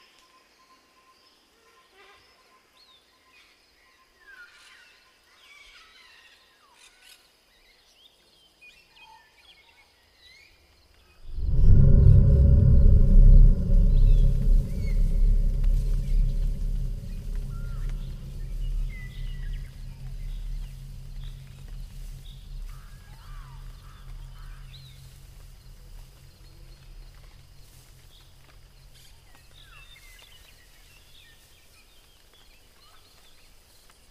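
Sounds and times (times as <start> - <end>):
deep roar moaning: 11.2 - 29.6
jungle ambience: 11.2 - 33.2.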